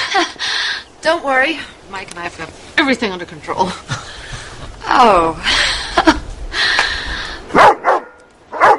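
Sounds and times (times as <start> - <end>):
speech: 0.2 - 4.0, 4.9 - 5.7
dog barking: 7.5 - 8.7.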